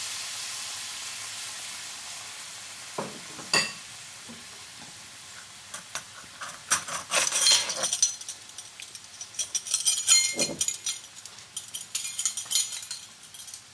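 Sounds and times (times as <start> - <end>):
cider stirred into a sizzling pan of softened ingredients: 0.0 - 9.6, 11.0 - 13.7
spoon scraping and clicking in a pan: 5.8 - 12.6.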